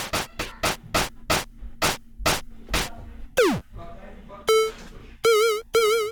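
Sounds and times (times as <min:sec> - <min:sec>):
punchy electronic drum hits: 0:00.2 - 0:03.7
sustained wobbling electronic tones: 0:03.4 - 0:03.7, 0:04.5 - 0:06.1.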